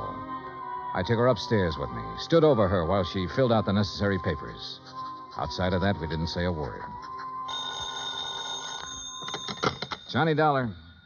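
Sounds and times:
speech: 1.0 - 7.1, 10.1 - 10.8
old-fashioned telephone bell ringing: 7.4 - 10.3.

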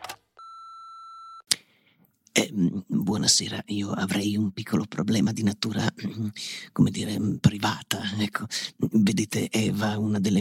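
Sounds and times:
answering machine electronic beep: 0.4 - 1.4
speech: 2.4 - 10.3.

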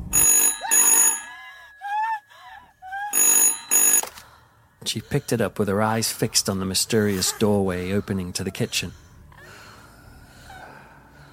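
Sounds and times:
telephone bell ringing: 0.1 - 2.2, 3.1 - 4.2
speech: 4.9 - 9.0.

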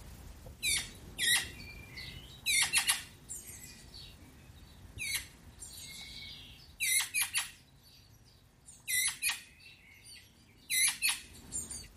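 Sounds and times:
young Eurasian magpie giving harsh raspy begging calls: 2.4 - 3.2, 6.8 - 7.6, 8.9 - 9.5, 10.7 - 11.3.

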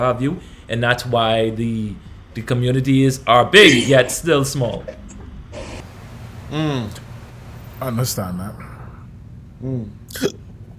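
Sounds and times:
speech: 0.0 - 5.0, 6.5 - 7.0, 7.8 - 8.7, 9.6 - 10.4
person hiccuping: 5.8 - 7.8.

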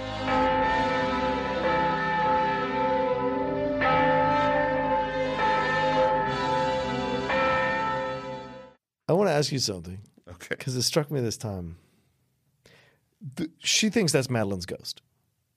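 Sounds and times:
large tower bell tolling: 0.0 - 8.7
speech: 9.4 - 11.9, 13.2 - 15.0.

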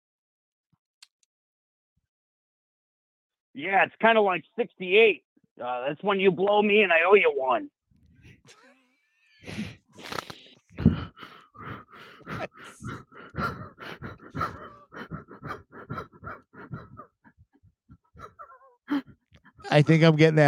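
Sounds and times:
speech: 3.6 - 7.8, 19.7 - 20.4
heavy rapid panting into a microphone: 9.4 - 19.6.

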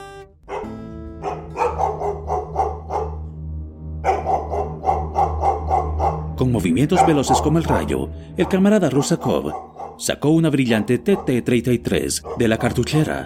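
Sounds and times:
dog barking loudly: 0.4 - 3.3, 4.0 - 7.8, 8.4 - 10.0, 10.7 - 11.5, 12.2 - 12.7
speech: 6.4 - 13.2.

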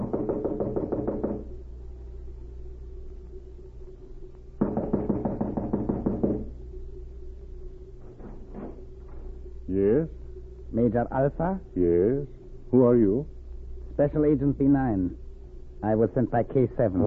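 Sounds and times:
firm knocking on a wooden cottage door: 0.0 - 1.6, 4.6 - 6.5
steady low hum: 0.0 - 17.0
speech: 10.8 - 13.4, 14.0 - 15.2, 15.8 - 17.0.

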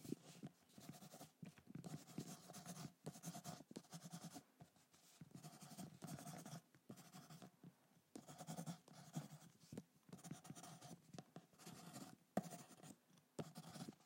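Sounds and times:
pen scratching on paper writing a note in a secondhand shop: 0.2 - 4.4, 5.4 - 7.5, 8.2 - 14.0.

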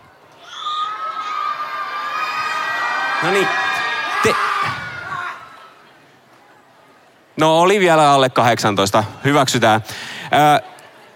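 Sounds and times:
crowd of children under 18 in an audience shouting and cheering: 0.3 - 5.8
speech: 3.2 - 4.8, 7.4 - 10.7.

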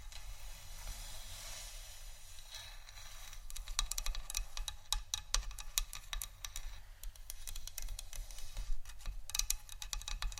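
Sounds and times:
faint hiss: 0.0 - 5.0, 5.8 - 9.3
wooden tapping and clicking: 3.5 - 10.3.

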